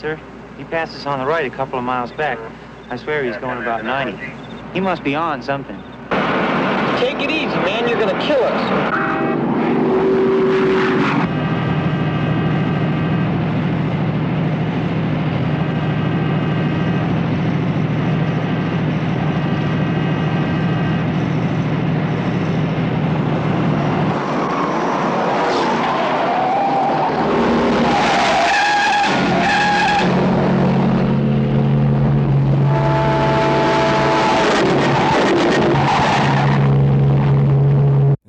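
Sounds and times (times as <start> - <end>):
speech: 0.0 - 5.9, 7.0 - 9.3
tires skidding: 6.1 - 11.3, 20.4 - 37.5
racing car engines roaring and revving: 6.1 - 38.2.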